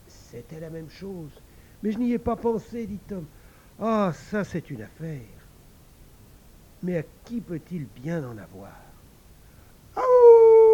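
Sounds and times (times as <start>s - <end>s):
speech: 0.3s - 5.4s, 6.8s - 8.9s
dog howling: 10.0s - 10.7s.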